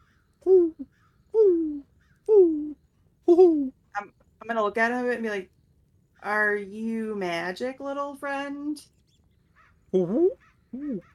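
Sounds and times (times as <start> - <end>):
human voice imitating an owl hooting: 0.4 - 3.7, 10.0 - 11.1
speech: 3.4 - 5.6, 6.2 - 9.0, 9.9 - 11.1.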